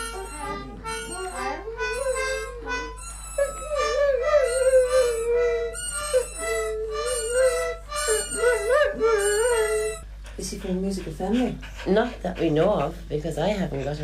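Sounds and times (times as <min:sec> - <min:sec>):
dog howling along in wavering tones: 0:00.0 - 0:10.0
speech: 0:10.7 - 0:14.0.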